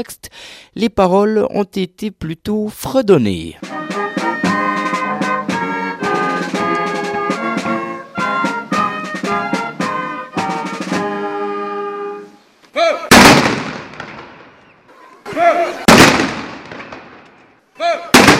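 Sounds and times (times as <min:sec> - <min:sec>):
speech: 0:00.0 - 0:03.7
brass band music at a celebration of the 1848 revolution: 0:03.6 - 0:12.4
ceremonial cannon salvos fired in a harbour: 0:13.1 - 0:14.6, 0:15.9 - 0:17.4, 0:18.1 - 0:18.3.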